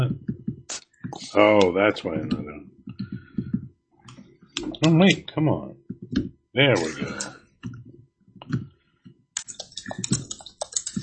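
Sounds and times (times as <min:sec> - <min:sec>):
speech: 0:01.2 - 0:02.7, 0:04.8 - 0:07.4
typing on a computer keyboard: 0:09.4 - 0:11.0.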